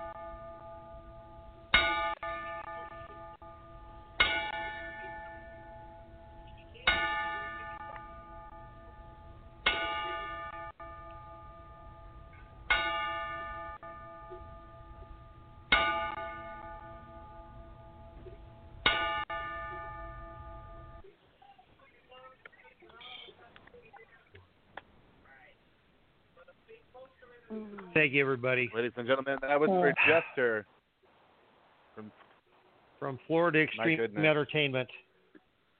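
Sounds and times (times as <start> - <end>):
ringing bell struck for a ten-bell salute: 0.0 - 21.1
speech: 27.5 - 30.7, 33.1 - 35.1.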